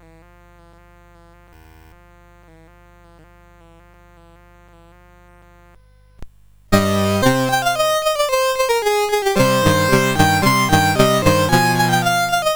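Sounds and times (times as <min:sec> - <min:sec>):
violin on CSG8580R5 chip: 0:06.8 - 0:12.5.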